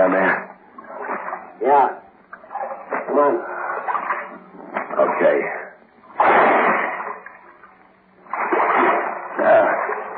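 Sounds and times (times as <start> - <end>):
speech: 1.6 - 2.0
heavy splashing of someone wading into waist-deep water: 2.5 - 5.3, 6.2 - 10.1.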